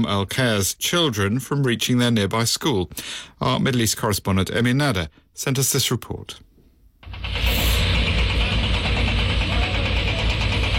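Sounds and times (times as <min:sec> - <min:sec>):
speech: 0:00.0 - 0:06.5
diggers, cranes and lorries at a building site in the hills of Hebron: 0:07.0 - 0:10.7.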